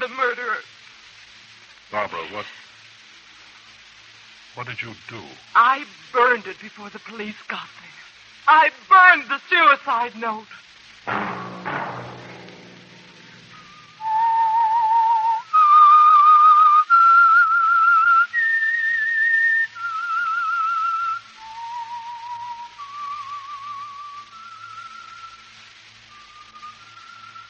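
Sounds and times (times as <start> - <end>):
speech: 1.9 - 2.7, 4.6 - 11.4
brief thumps: 11.1 - 14.1
whistled theme melody of a radio program: 13.4 - 27.4.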